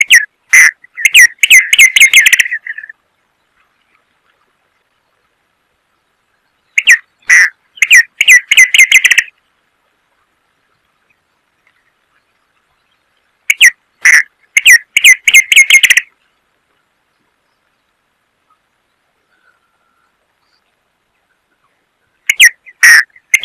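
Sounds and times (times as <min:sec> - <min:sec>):
many-colored rush tyrant Tachuris rubrigastra calling: 0:00.0 - 0:03.0, 0:06.5 - 0:09.4, 0:11.0 - 0:16.3, 0:18.4 - 0:23.4.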